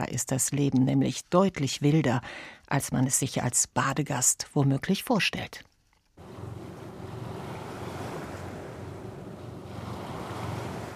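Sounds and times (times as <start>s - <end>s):
speech: 0.0s - 5.7s
low boat engine rumble: 6.2s - 10.9s
sea water and waves washing past a two-masted boat off the Ligurian coast: 6.2s - 10.9s
wind buffeting the microphone: 6.2s - 10.9s.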